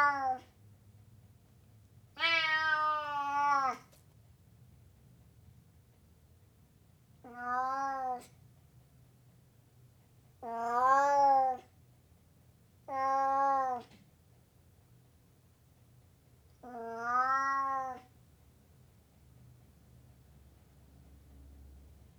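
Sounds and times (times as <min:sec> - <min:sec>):
Burmese cat meowing: 0:00.0 - 0:00.5, 0:02.2 - 0:03.9, 0:07.2 - 0:08.4, 0:10.4 - 0:11.7, 0:12.9 - 0:14.0, 0:16.6 - 0:18.1.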